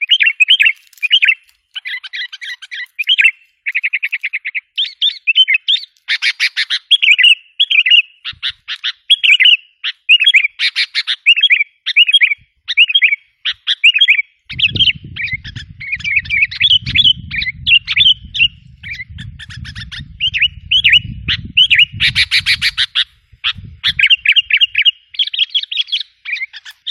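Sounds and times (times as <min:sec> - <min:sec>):
sooty-headed bulbul song: 0:00.0 - 0:26.8
low rumble: 0:14.6 - 0:22.1.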